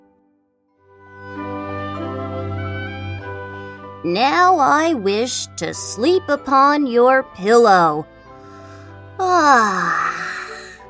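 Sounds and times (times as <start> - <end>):
speech: 4.0 - 8.1, 9.3 - 10.0
narrator imitating a frog's long yawn: 9.2 - 10.8.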